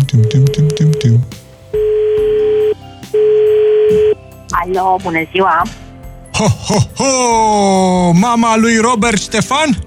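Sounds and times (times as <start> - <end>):
touch-tone beeps of a phone number being dialed: 0.1 - 2.7
telephone ringing tones: 0.1 - 4.1
speech: 4.8 - 5.8, 6.4 - 9.8.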